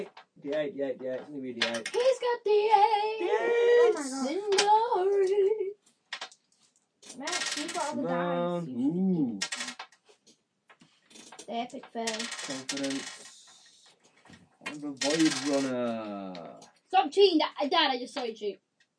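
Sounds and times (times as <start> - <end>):
people talking: 0.0 - 5.7, 7.2 - 9.6, 11.5 - 13.7, 14.7 - 18.6
dice rattling and clattering: 1.6 - 2.2, 6.1 - 6.4, 7.0 - 8.0, 9.4 - 10.0, 11.1 - 13.5, 14.6 - 15.8.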